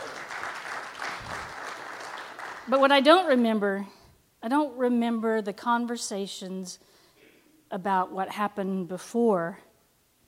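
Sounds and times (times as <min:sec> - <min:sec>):
audience clapping hands: 0:00.0 - 0:02.9
speech: 0:02.7 - 0:07.0, 0:07.7 - 0:09.6.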